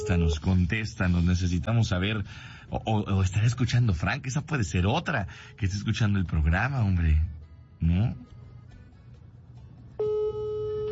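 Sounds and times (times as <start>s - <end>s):
speech: 0.1s - 8.3s
telephone line ringing unanswered: 10.0s - 10.8s.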